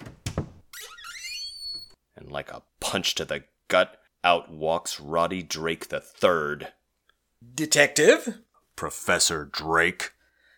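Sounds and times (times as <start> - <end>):
bedroom door hinge creaking: 0.0 - 2.0
speech: 2.3 - 6.8, 7.4 - 10.2.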